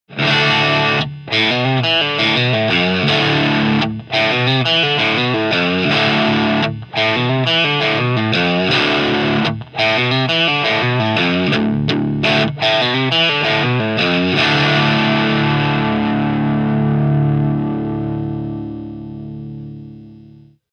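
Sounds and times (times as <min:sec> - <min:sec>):
electric guitar on bridge single-coil pickup: 0:00.1 - 0:20.6.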